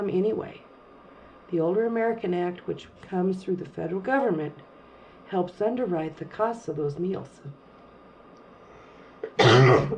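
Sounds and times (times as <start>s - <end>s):
speech: 0.0s - 0.7s, 1.5s - 4.7s, 5.3s - 7.6s, 9.7s - 9.9s
loud raspy hacking cough: 9.2s - 9.9s
rough throat clearing: 9.2s - 9.9s.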